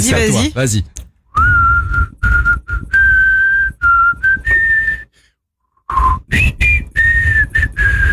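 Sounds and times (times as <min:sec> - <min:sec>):
speech: 0:00.0 - 0:01.0
person whistling a pop-style melody: 0:01.3 - 0:05.2, 0:05.8 - 0:08.1.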